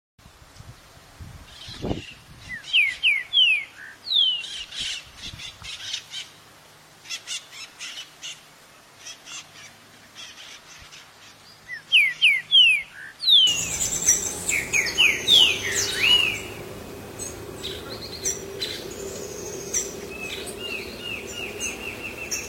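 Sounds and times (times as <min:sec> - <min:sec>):
trinca-ferro verdadeiro singing: 0:02.5 - 0:04.8, 0:10.2 - 0:22.4.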